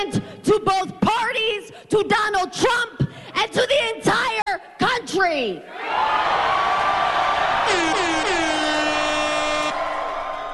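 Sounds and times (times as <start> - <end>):
speech: 0.0 - 3.9, 5.2 - 6.7
crowd cheering at a rally: 5.7 - 10.5
air horn blasts at a rally: 7.7 - 10.2.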